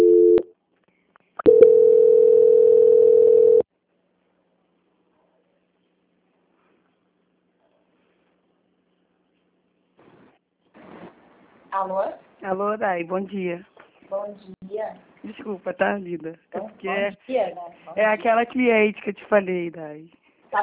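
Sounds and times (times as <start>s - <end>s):
telephone line tones during a call transfer: 0.0s - 0.5s, 1.4s - 3.6s
speech: 11.8s - 20.6s.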